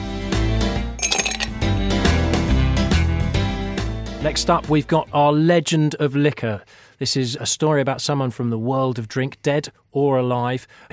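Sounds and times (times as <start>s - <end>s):
steady musical bed: 0.0s - 6.4s
glasses of sipping rum clinking in a toast: 1.0s - 1.6s
speech: 4.2s - 10.9s.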